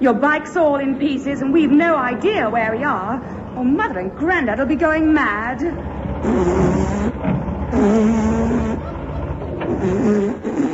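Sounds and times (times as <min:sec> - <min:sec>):
speech: 0:00.0 - 0:08.0, 0:09.8 - 0:10.7
car engine humming: 0:00.0 - 0:10.7
laughter: 0:07.7 - 0:10.7.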